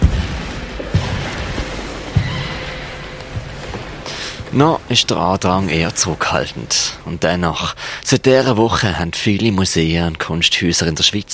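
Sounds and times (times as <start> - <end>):
person strolling footsteps on wooden floor in an art museum in Switzerland: 0.0 - 6.4
hollow echoing room tone in an art museum: 0.0 - 10.8
speech: 4.5 - 11.3.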